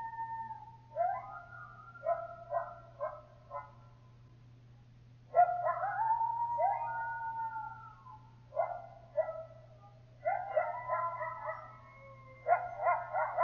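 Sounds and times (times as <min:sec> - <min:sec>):
several coyotes yipping and howling: 0:00.0 - 0:04.0, 0:05.3 - 0:13.4.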